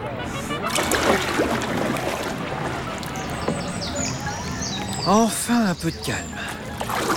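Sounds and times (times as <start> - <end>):
water of a shallow greenish lake at 2000 metres altitude lapping: 0.4 - 7.1
small water splashes and clicks against a hull: 0.6 - 5.0, 6.4 - 7.1
speech: 5.0 - 6.4.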